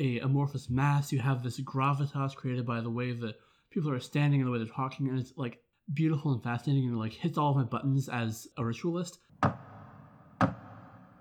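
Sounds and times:
speech: 0.0s - 9.7s, 10.4s - 10.6s
knocking on a door: 9.4s - 11.1s.

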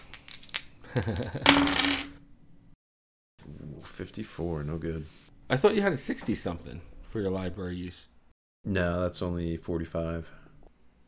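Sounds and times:
dice rolling onto a hard tabletop: 0.0s - 2.2s
speech: 0.9s - 2.2s, 4.0s - 10.4s.

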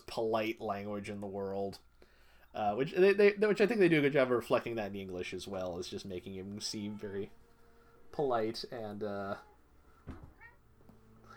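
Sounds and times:
low hum: 0.0s - 11.3s
speech: 0.2s - 1.9s, 2.5s - 7.4s, 8.1s - 9.5s
cat meowing: 6.7s - 7.4s, 9.4s - 11.3s
dull thump: 10.0s - 10.4s.

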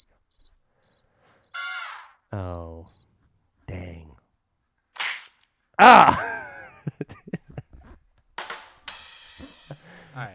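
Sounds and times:
crickets chirping sound effect from a soundboard: 0.0s - 3.1s
speech: 2.3s - 3.0s, 5.8s - 6.3s
laughter: 5.8s - 8.0s, 9.4s - 10.3s.

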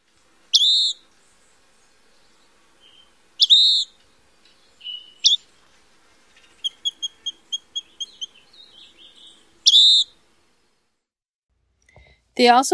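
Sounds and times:
truncated pewee-like tyrant flycatcher call: 0.2s - 10.2s
speech: 12.4s - 12.7s.

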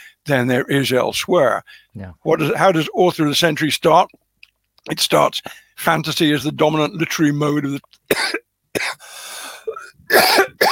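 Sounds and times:
speech: 0.3s - 4.2s, 4.8s - 8.4s
person with a lingering cough coughing: 8.1s - 9.0s, 9.6s - 10.7s.

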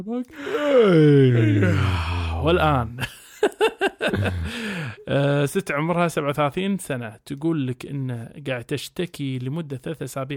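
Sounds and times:
speech: 0.0s - 10.3s
big drawn-out yawn: 0.3s - 2.8s
laughter: 1.4s - 5.0s.

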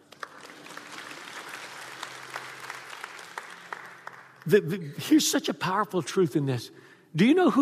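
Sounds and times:
room full of people clapping: 0.0s - 4.8s
speech: 4.4s - 7.5s.

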